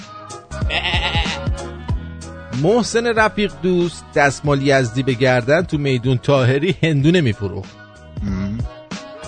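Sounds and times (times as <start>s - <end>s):
sheep bleating loudly: 0.6s - 1.6s
speech: 0.7s - 1.7s, 2.6s - 8.4s.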